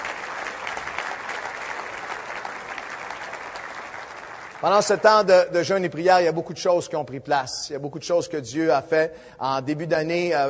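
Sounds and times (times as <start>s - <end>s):
audience applauding: 0.0s - 5.3s
speech: 4.6s - 10.4s.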